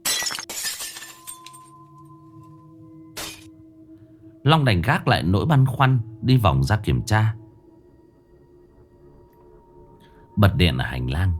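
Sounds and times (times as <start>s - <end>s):
furniture and objects falling and breaking in a living room: 0.0s - 1.8s, 3.2s - 3.5s
lingering ringing tones: 0.9s - 11.3s
speech: 4.4s - 7.4s, 10.4s - 11.3s.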